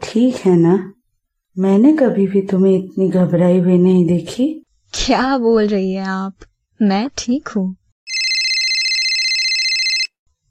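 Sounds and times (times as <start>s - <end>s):
speech: 0.1s - 1.0s, 1.6s - 7.8s
mobile phone electronic ringtone: 8.1s - 10.2s.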